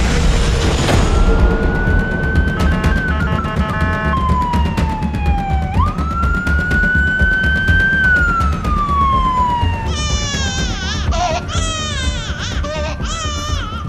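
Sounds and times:
low engine rumble: 0.0s - 13.8s
rising and falling siren-like tone: 1.0s - 9.9s
newborn baby crying: 9.8s - 13.8s.

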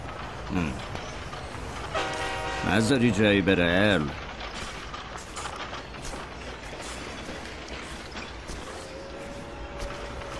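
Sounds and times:
train rumbling with a steady mechanical roar: 0.0s - 10.3s
speech: 0.5s - 1.0s, 2.7s - 4.2s
train horn sounding short harmonic blasts: 1.9s - 3.0s, 8.8s - 10.3s.

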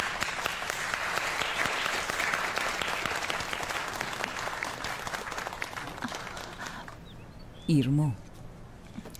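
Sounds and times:
audience applauding at a school gathering: 0.0s - 7.1s
speech: 7.7s - 8.2s.

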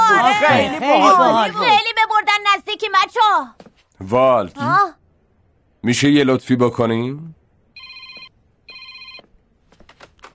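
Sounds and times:
speech: 0.4s - 2.0s, 2.8s - 5.0s, 5.8s - 7.4s
telephone ringing in electronic bursts: 7.8s - 9.4s.

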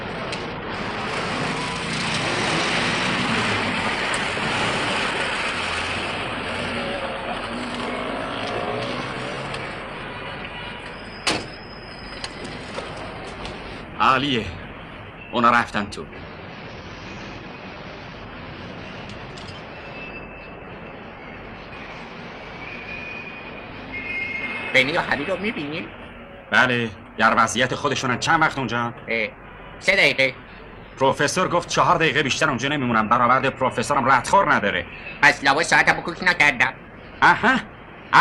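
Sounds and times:
old worn-out car driving with engine and road noise: 0.2s - 13.6s
speech: 14.2s - 14.6s, 15.4s - 16.2s, 24.8s - 30.4s, 31.0s - 38.1s.

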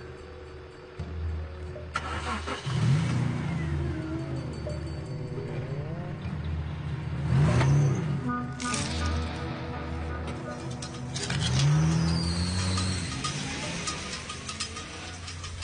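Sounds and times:
car engine starting and revving: 1.7s - 15.6s.

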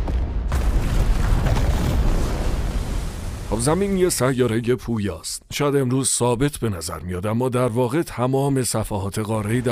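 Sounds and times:
volcanic eruption booming with low roar and rumbling blasts: 0.0s - 4.2s
speech: 3.6s - 9.7s.

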